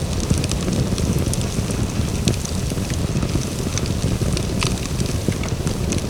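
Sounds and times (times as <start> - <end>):
small fire of firewood and trash burning: 0.0 - 6.0.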